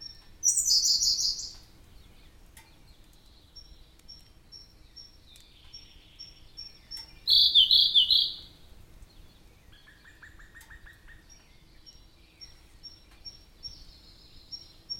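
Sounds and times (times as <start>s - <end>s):
Siberian blue robin Larvivora cyane trilling: 0.0s - 1.6s, 6.3s - 8.5s.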